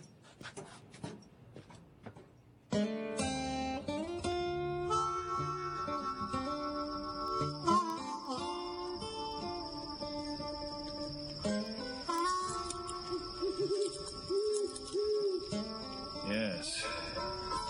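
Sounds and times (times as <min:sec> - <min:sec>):
high trill of crickets at night: 0:03.4 - 0:17.6
owl hooting at night: 0:05.2 - 0:17.6.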